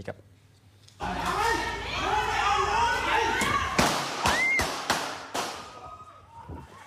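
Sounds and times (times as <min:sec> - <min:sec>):
speech: 0:00.0 - 0:00.3
agitated talking voices: 0:01.0 - 0:03.8
gunshots: 0:03.7 - 0:05.8.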